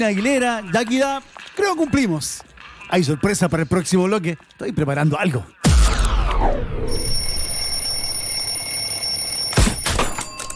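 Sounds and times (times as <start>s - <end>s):
speech: 0.0s - 5.6s, 6.4s - 7.2s
alarm clock ringing: 6.9s - 10.5s.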